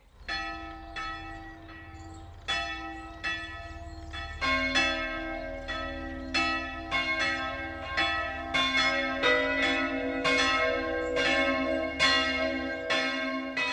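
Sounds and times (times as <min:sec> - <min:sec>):
three bells of the Catholic St. Jakobus church ringing for noon in Upper Franconia: 0:00.0 - 0:13.7.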